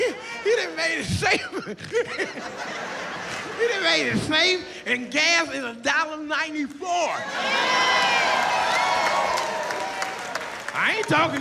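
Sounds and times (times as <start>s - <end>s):
laughter: 0.0s - 4.6s
speech: 0.7s - 8.6s, 10.8s - 11.3s
audience booing: 7.2s - 11.0s.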